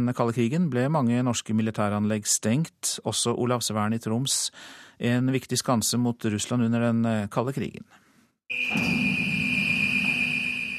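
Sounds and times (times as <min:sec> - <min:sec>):
speech: 0:00.0 - 0:09.0
electronic alarm tone as submarine bay gate opens: 0:08.5 - 0:10.7.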